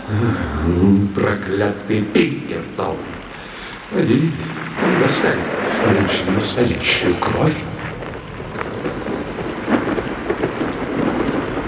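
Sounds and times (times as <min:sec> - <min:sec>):
low thunder rumbling and rolling: 0:00.0 - 0:11.6
steady dense rain: 0:00.0 - 0:11.6
speech: 0:00.1 - 0:03.2, 0:03.9 - 0:07.7.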